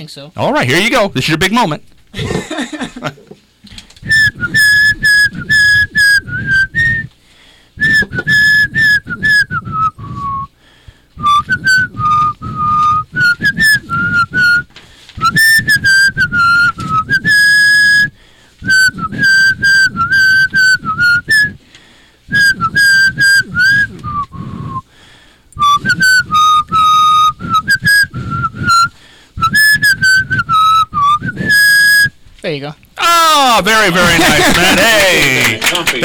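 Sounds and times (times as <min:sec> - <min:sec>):
speech: 0:00.0 - 0:03.4, 0:33.6 - 0:36.0
laughter: 0:00.8 - 0:03.4, 0:33.0 - 0:36.0
person whistling a cheerful Christmas tune: 0:04.0 - 0:07.2, 0:07.8 - 0:10.6, 0:11.2 - 0:21.6, 0:22.3 - 0:24.9, 0:25.6 - 0:32.2.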